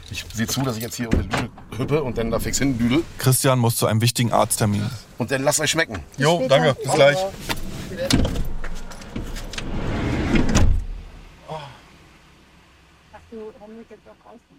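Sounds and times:
car door noises: 0.0 - 3.2, 7.3 - 11.3
car setting off toward the harbour: 0.0 - 3.5, 4.3 - 14.0
speech: 0.1 - 8.3.

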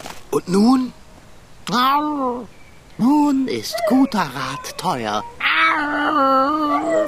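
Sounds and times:
speech: 0.4 - 1.0, 1.7 - 7.0
pug whining and howling: 3.5 - 7.0.

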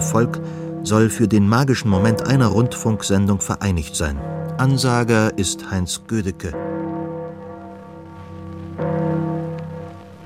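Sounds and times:
church bells ringing: 0.0 - 10.2
speech: 0.1 - 6.9.

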